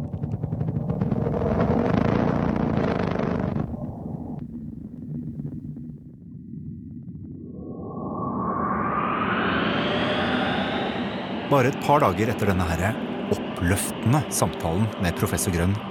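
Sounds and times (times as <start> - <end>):
loud deep rumbling synthetic drone of a planet Mercury sonification: 0.0 - 15.9
whooshing tone sweeping upward in pitch: 7.6 - 11.8
speech: 11.5 - 15.9.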